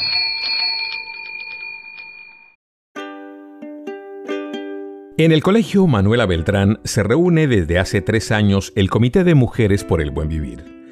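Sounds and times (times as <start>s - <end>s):
small bell ringing and jingling: 0.0s - 2.6s
speech: 5.2s - 10.9s.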